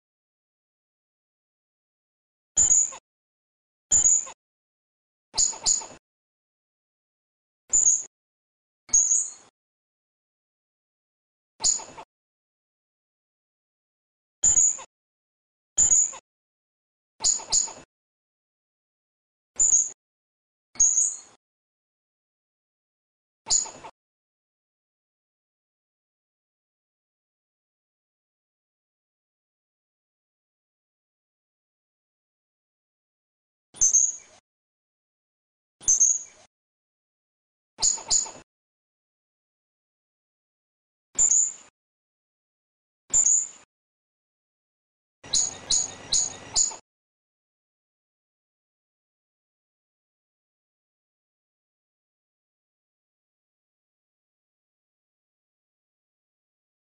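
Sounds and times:
squirrel: 2.6s - 3.0s, 3.9s - 4.4s, 5.4s - 6.0s, 7.7s - 8.1s, 8.9s - 9.5s, 11.6s - 12.0s, 14.4s - 14.9s, 15.8s - 16.2s, 17.2s - 17.9s, 19.6s - 20.0s, 20.8s - 21.4s, 23.5s - 23.9s, 33.8s - 34.4s, 35.8s - 36.5s, 37.8s - 38.4s, 41.2s - 41.7s, 43.1s - 43.7s, 45.2s - 46.8s.

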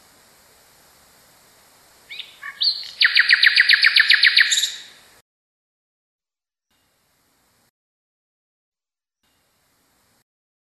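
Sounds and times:
common nightingale singing: 2.1s - 5.1s.

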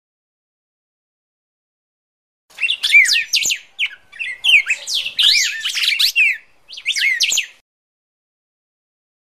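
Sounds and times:
red-crested cardinal fighting calls of sharp rapid chirps and whistled notes: 2.5s - 7.6s.

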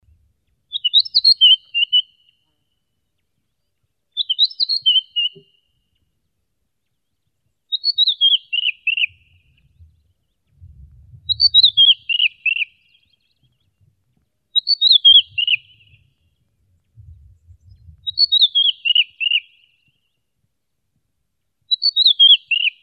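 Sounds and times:
red-winged blackbird calling: 0.7s - 2.4s, 4.2s - 5.6s, 7.7s - 9.8s, 11.3s - 13.7s, 14.6s - 16.2s, 17.7s - 19.9s, 21.7s - 22.8s.

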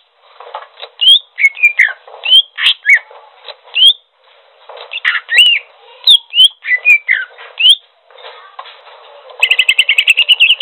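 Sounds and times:
greater green leafbird song: 1.0s - 3.1s, 3.8s - 4.0s, 4.9s - 7.8s, 9.4s - 10.6s.

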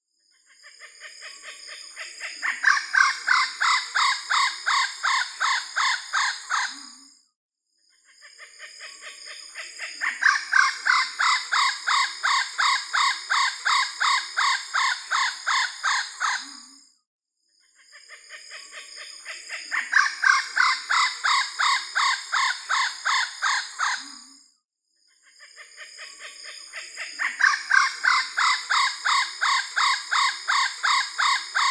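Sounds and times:
red-bellied kookaburra calling: 2.4s - 7.0s, 9.9s - 16.7s, 19.3s - 24.3s, 26.1s - 31.7s.

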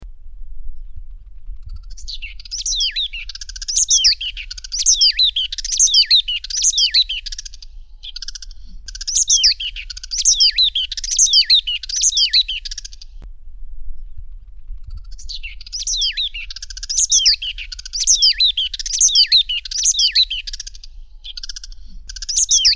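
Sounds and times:
Chubb's cisticola calling: 1.6s - 13.1s, 15.1s - 22.7s.

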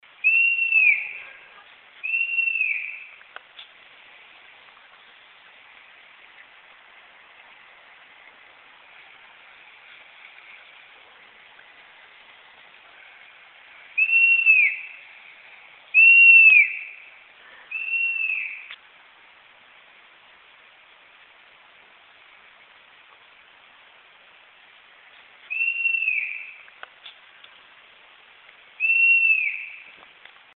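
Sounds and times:
Asio clamator calling: 0.2s - 3.2s, 13.9s - 15.1s, 15.9s - 18.8s, 25.5s - 26.7s, 28.8s - 30.0s.

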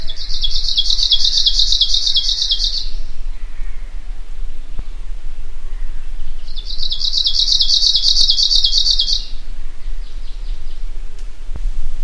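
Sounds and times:
Arctic warbler song chattering high trill: 0.0s - 3.9s, 5.8s - 9.4s
Arctic warbler soft notes: 0.0s - 11.9s.

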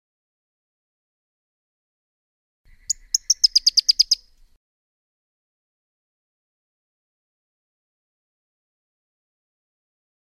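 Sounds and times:
Pyrrhuloxia calling: 2.7s - 4.4s.

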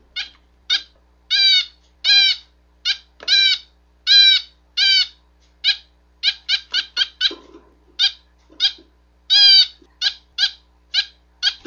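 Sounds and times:
female owl finch calling: 0.0s - 11.6s.

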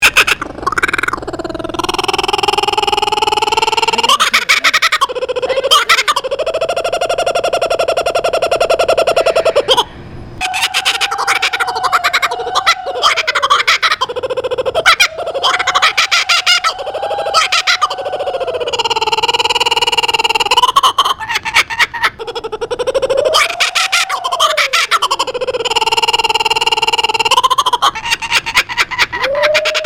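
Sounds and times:
kookaburra laughing at Cincinnati Zoo: 0.0s - 29.8s.

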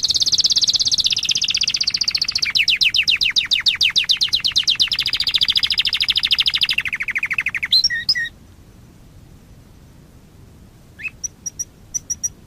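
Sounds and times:
canary song with rapid rolling trill and whistled notes: 0.0s - 8.4s, 11.0s - 12.4s.

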